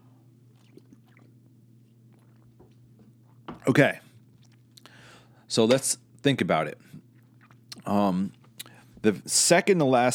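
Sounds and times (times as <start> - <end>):
steady low electrical hum: 0.0 - 10.1
person sipping water with wet mouth sounds and swallowing: 0.3 - 5.4, 6.8 - 9.0
speech: 3.7 - 4.1, 5.5 - 6.9, 7.9 - 8.4, 9.0 - 10.1.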